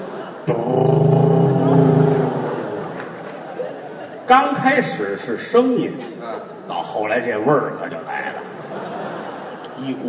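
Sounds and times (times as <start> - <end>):
laughter: 0.0 - 5.0, 8.1 - 10.0
speech: 0.5 - 1.0, 4.3 - 8.5, 9.8 - 10.0
voice imitating a motorcycle engine starting: 0.5 - 2.5.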